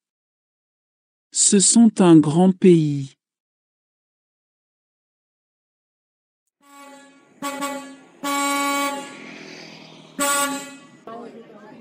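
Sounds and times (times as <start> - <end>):
speech: 1.4 - 3.2
bus horn honking as the bus arrives: 6.6 - 11.3.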